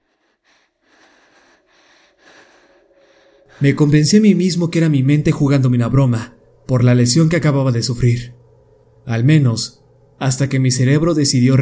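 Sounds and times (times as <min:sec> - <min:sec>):
slow raspy breathing in a basement: 0:00.0 - 0:03.9
speech: 0:03.5 - 0:08.4, 0:09.0 - 0:11.5.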